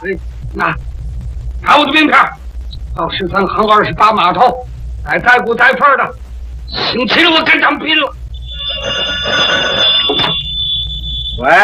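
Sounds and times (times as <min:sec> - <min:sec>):
speech: 0:00.0 - 0:01.0, 0:01.6 - 0:02.4, 0:03.0 - 0:08.2, 0:11.4 - 0:11.6
telephone bell ringing: 0:08.4 - 0:11.3.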